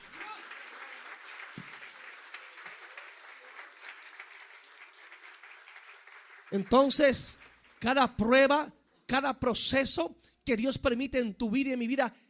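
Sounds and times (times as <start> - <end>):
crowd applauding: 0.0 - 8.0
speech: 6.5 - 12.2.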